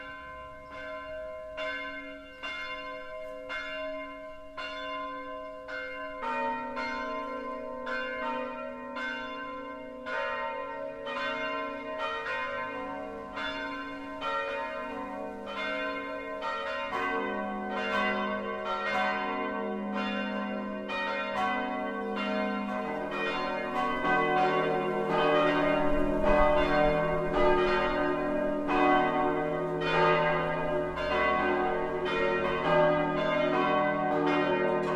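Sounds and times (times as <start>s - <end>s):
several church bells ringing a peal: 0.0s - 34.9s.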